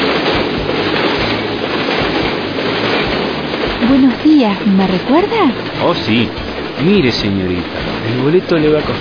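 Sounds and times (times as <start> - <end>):
loud rumbling noise of a train station: 0.0 - 8.9
low rhythmic clatter of rail cars rolling past: 0.0 - 8.9
speech: 3.9 - 8.9.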